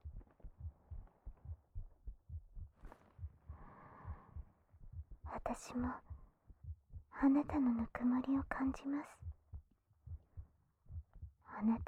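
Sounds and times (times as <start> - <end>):
heartbeat: 0.0 - 11.8
soft breath: 2.8 - 4.7
speech: 5.5 - 6.1, 7.2 - 9.2, 11.6 - 11.8.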